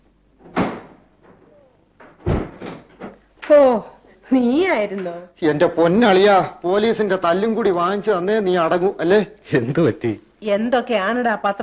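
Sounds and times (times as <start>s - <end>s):
wooden thuds of a door being opened: 0.4s - 1.4s, 2.0s - 3.2s
speech: 3.5s - 11.6s.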